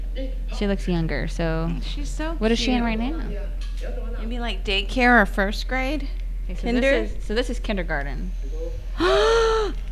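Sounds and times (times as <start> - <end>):
speech: 0.1 - 9.8
person gasping in surprise: 9.0 - 9.8.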